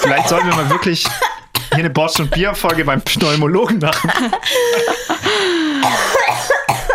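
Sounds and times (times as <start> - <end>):
laughter: 0.0 - 1.0, 3.1 - 5.7
harsh coughing fit: 0.0 - 5.2, 5.8 - 6.9
speech: 0.1 - 6.9
strained wheezy breaths: 4.4 - 6.2.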